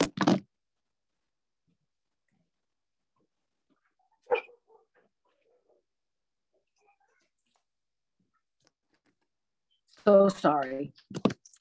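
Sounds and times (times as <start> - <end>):
dogs next door barking through a window: 4.1 - 5.9
speech: 10.0 - 11.3.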